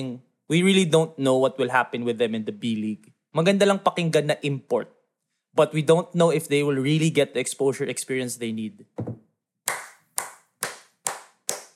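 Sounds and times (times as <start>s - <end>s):
speech: 0.0s - 5.0s, 5.6s - 9.2s
hands clapping in a short round of applause: 9.7s - 11.7s.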